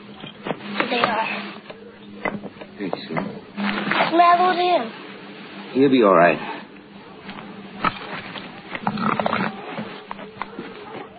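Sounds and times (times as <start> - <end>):
rough noisy background: 0.0 - 11.1
speech: 4.1 - 5.0, 5.7 - 6.5
dogs baying and howling: 9.4 - 11.1.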